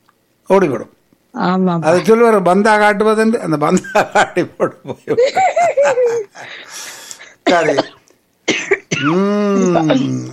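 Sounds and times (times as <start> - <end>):
speech: 0.5 - 6.9, 7.5 - 10.3
laughter: 3.8 - 6.6
slight dry cough: 7.4 - 9.2.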